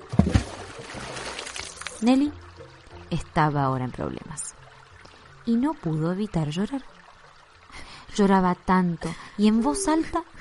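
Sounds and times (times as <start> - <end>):
bag holding books and food splashing into a stream: 0.0 - 2.0
stream burbling and trickling: 0.0 - 10.4
speech: 2.0 - 2.4, 3.1 - 4.6, 5.5 - 6.9, 8.2 - 10.3.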